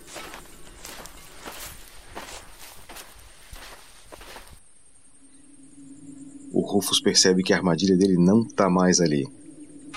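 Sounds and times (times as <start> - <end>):
footsteps of a group of people walking toward a cave entrance: 0.0 - 4.6
speech: 6.6 - 9.4.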